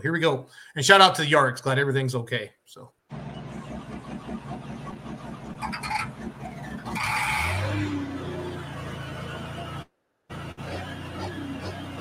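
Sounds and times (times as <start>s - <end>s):
speech: 0.0s - 3.3s
pulling tractor engine revving and driving on a track: 3.1s - 11.9s.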